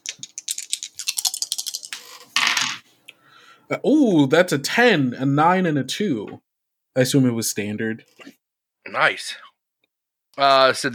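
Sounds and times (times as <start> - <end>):
dice shaken in a hand or cup in a tabletop game: 0.0 - 2.8
speech: 3.7 - 6.4, 7.0 - 9.5, 10.4 - 10.9.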